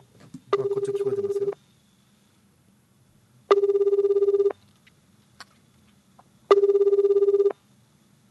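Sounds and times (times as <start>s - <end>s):
telephone ringback tone of an outgoing call: 0.6s - 1.6s, 3.5s - 4.6s, 6.5s - 7.6s.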